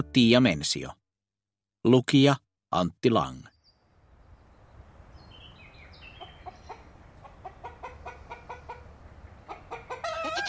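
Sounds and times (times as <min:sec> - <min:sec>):
speech: 0:00.0 - 0:01.0, 0:01.8 - 0:03.5
chickens clucking: 0:06.0 - 0:10.4
rooster crowing: 0:09.8 - 0:10.4.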